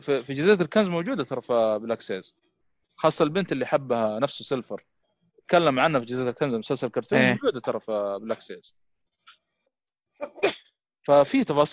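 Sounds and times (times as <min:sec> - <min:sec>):
speech: 0:00.0 - 0:04.9, 0:05.5 - 0:08.9, 0:10.2 - 0:11.7
sneeze with a sharp intake of breath: 0:10.2 - 0:10.8.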